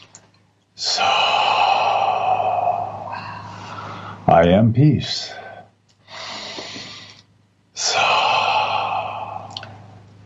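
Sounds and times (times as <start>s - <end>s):
deep breath during a guided belly-breathing exercise: 0.8s - 4.3s, 5.2s - 7.2s, 7.8s - 10.0s
sustained drone: 0.8s - 5.6s, 7.8s - 10.2s
speech: 4.4s - 5.4s.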